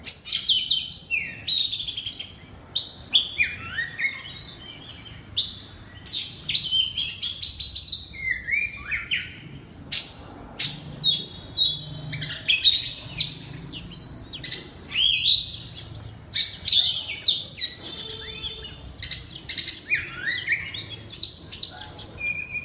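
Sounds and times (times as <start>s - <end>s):
oriental magpie-robin singing in loud open style: 0.0s - 22.6s.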